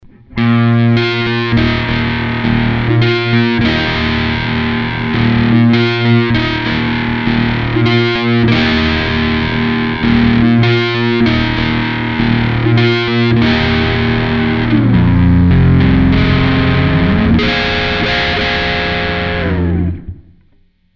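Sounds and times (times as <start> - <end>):
British clean boost guitar tone: 0.0 - 20.8.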